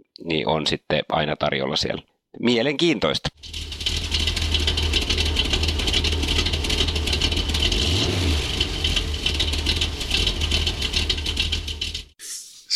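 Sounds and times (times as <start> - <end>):
speech: 0.2 - 3.7
car engine rumbling and revving: 3.4 - 12.2.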